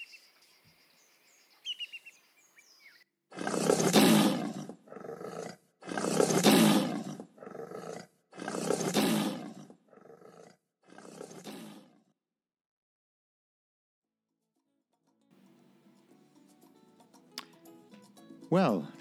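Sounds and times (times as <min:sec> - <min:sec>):
faint bird chirps: 0:00.0 - 0:03.0
lion roaring: 0:03.3 - 0:12.1
speech: 0:18.5 - 0:19.0.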